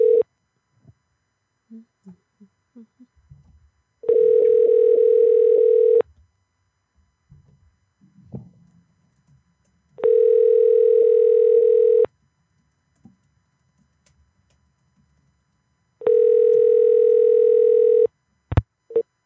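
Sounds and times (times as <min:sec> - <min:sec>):
outgoing call ringback tone: 0:00.0 - 0:00.2, 0:04.0 - 0:06.0, 0:10.0 - 0:12.1, 0:16.0 - 0:18.1
faint small noises: 0:00.0 - 0:19.2.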